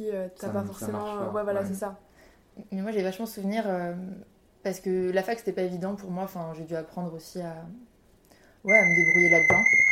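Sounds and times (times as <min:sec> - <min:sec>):
speech: 0:00.0 - 0:07.9, 0:08.6 - 0:09.8
phone alarm reminder to take a pill: 0:08.7 - 0:09.8.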